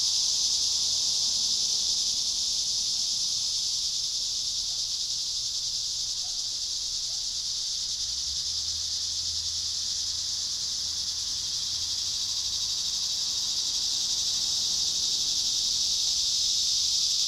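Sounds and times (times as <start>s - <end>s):
cicadas droning: 0.0s - 17.2s.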